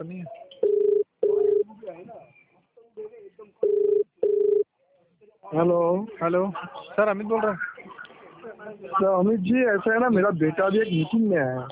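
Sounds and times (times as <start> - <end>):
speech: 0.0 - 0.4, 5.6 - 7.7, 9.0 - 11.7
people talking quietly: 0.0 - 11.7
telephone ringback tone as a call connects: 0.6 - 1.6, 3.6 - 4.6.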